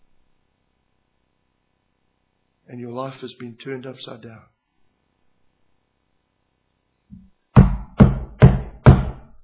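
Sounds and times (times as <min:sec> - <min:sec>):
speech: 0:02.7 - 0:04.6
firm knocking on a door: 0:07.6 - 0:09.3.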